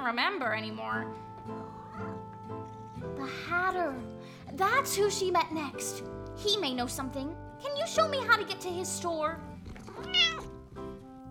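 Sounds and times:
speech: 0.1s - 10.4s
cat meowing: 9.9s - 10.6s.

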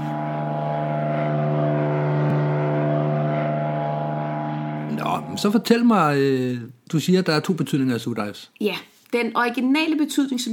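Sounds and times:
airplane flying overhead: 0.0s - 5.6s
speech: 5.2s - 10.5s.

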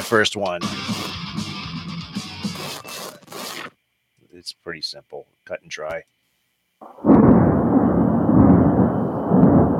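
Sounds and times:
speech: 0.0s - 1.5s, 4.7s - 6.2s, 6.8s - 7.8s
thunder crack and rumble: 6.8s - 9.7s.

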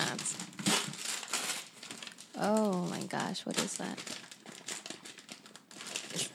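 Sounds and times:
paper stapled to plastic crinkling as a gift is unwrapped: 0.0s - 6.3s
speech: 2.4s - 4.2s.

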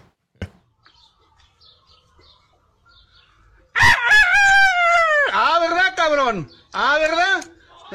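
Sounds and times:
rooster crowing: 3.7s - 5.4s
speech: 6.3s - 7.2s.

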